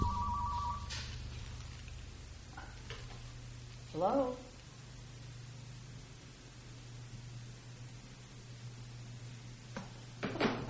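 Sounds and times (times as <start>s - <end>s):
short softer chirping tones: 0.0s - 0.9s
telephone ringing with an electronic trill: 0.0s - 0.9s
low hum: 0.0s - 10.6s
speech: 4.0s - 4.5s.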